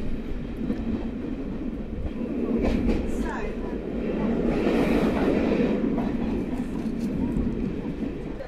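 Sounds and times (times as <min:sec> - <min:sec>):
steam-hauled train running along the rails through Hereford Station: 0:00.0 - 0:08.4.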